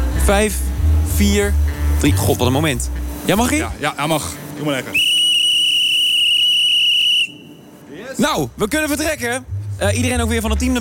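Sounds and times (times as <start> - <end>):
speech: 0.3 - 5.0, 8.2 - 10.7
whistle blast signalling a train's departure: 4.9 - 7.7.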